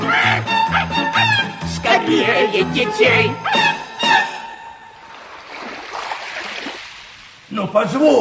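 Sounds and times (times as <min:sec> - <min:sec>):
music with voices: 0:00.0 - 0:04.7
speech: 0:02.1 - 0:03.7, 0:07.6 - 0:08.1
sea waves roaring with a steady wash of surf: 0:05.0 - 0:07.5.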